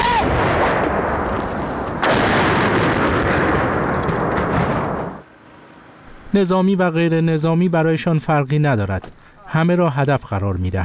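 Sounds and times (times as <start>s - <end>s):
explosions and heavy rumbling from air strikes on Chernihiv in northern Ukraine: 0.0s - 7.1s
sharp blast from an air strike: 0.2s - 7.6s
speech: 6.3s - 10.8s.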